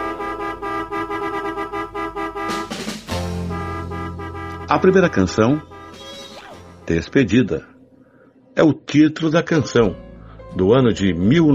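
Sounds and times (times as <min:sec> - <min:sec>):
car horn honking: 0:00.0 - 0:06.9
speech: 0:04.7 - 0:05.8, 0:06.9 - 0:07.7, 0:08.6 - 0:11.5.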